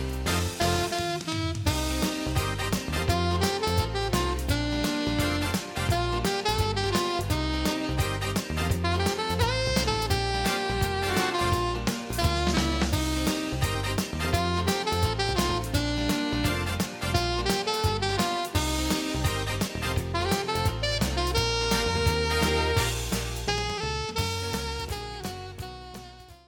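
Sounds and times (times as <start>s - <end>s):
alto saxophone: 0.2s - 26.4s.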